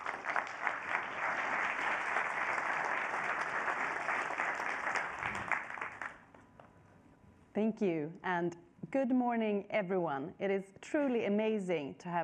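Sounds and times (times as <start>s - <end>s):
sustained applause from a sizable audience: 0.0s - 6.2s
speech: 7.6s - 12.2s.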